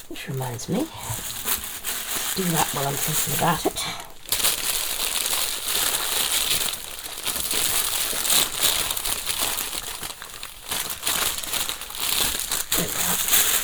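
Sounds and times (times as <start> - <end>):
tissue paper crinkling as a silk scarf is unwrapped: 0.0 - 13.6
speech: 0.1 - 1.3, 2.4 - 4.1.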